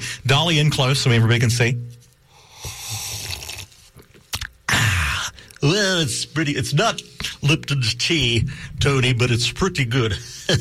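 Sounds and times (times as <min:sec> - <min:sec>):
speech: 0:00.3 - 0:02.0, 0:05.8 - 0:10.5
slurping sips of hot coffee brewed in a 1960s vintage coffee pot: 0:02.5 - 0:04.4
soft mouth and lip noises: 0:02.5 - 0:05.6.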